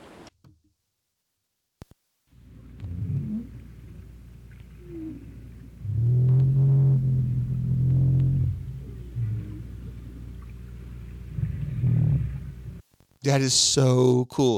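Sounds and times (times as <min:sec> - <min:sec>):
North Atlantic right whale calls recorded underwater in the Atlantic Ocean: 0:02.4 - 0:12.8
deep underwater rumble: 0:02.4 - 0:12.8
speech: 0:13.3 - 0:14.5.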